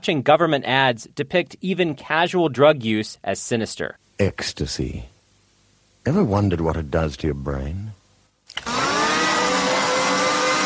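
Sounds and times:
speech: 0:00.0 - 0:05.1, 0:06.0 - 0:08.0
blender motor whining: 0:08.5 - 0:10.6.

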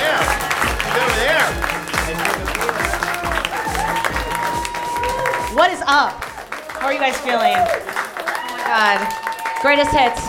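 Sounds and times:
thumping beat: 0:00.0 - 0:07.7
audience clapping and cheering: 0:00.0 - 0:10.2
speech: 0:05.9 - 0:06.2, 0:06.8 - 0:08.0, 0:08.7 - 0:10.2.

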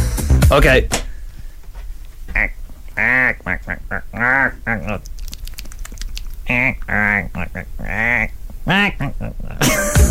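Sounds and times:
speech: 0:00.5 - 0:01.0, 0:02.4 - 0:05.1, 0:06.5 - 0:09.4
person imitating a family of ducks quacking while eating: 0:02.3 - 0:05.2, 0:06.4 - 0:10.1
rapid clicky pecking sounds imitating bills snapping up food: 0:04.7 - 0:07.0.

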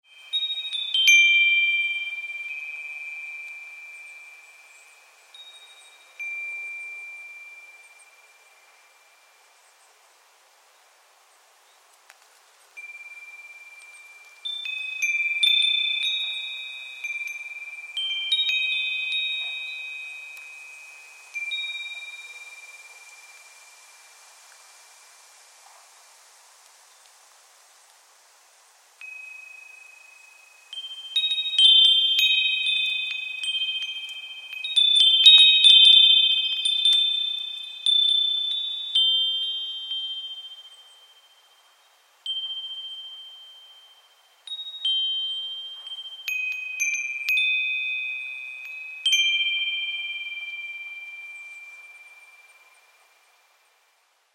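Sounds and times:
wind chimes in Ipswich cemetery: 0:00.0 - 0:54.3.

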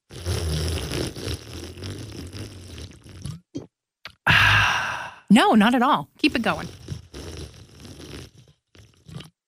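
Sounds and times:
loud slurping sip of water: 0:00.0 - 0:03.4, 0:06.6 - 0:09.4
small gulp of water: 0:00.1 - 0:05.2, 0:06.7 - 0:09.4
speech: 0:05.3 - 0:06.8.

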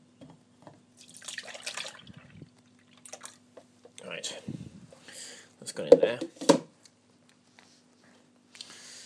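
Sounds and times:
liquid for homemade yogurt poured into a makeshift container: 0:01.0 - 0:03.4
speech: 0:05.8 - 0:06.4.

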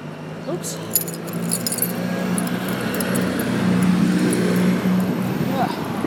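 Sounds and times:
noisy vehicle engine droning along the road: 0:00.0 - 0:06.0
speech: 0:00.5 - 0:01.5
faint metallic jingling: 0:00.7 - 0:05.2.

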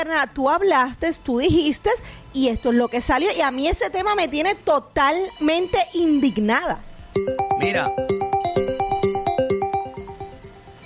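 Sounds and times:
speech: 0:00.0 - 0:08.2
telephone line ringing with electronic chime tones: 0:07.2 - 0:10.8.

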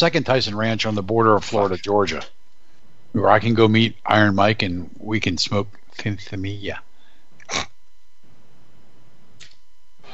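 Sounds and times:
speech: 0:00.0 - 0:02.4, 0:03.1 - 0:06.9, 0:07.5 - 0:07.7
sneeze: 0:07.4 - 0:07.7.

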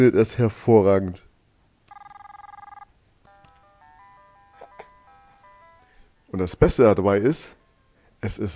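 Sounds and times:
speech: 0:00.0 - 0:01.3, 0:06.3 - 0:07.6, 0:08.2 - 0:08.5
toy telephone playing tinny melody of electronic tones: 0:01.9 - 0:08.0
baby's toy telephone ringing with trilling electronic bell: 0:01.9 - 0:08.2.

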